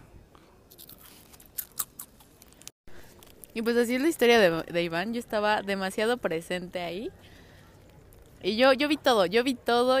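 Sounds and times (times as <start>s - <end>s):
person chewing crunchy food: 0.7s - 3.5s
speech: 3.6s - 7.3s, 8.4s - 9.9s.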